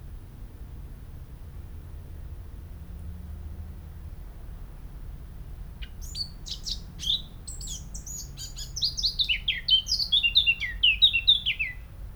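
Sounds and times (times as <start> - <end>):
Eurasian blackcap song: 5.8 - 11.9.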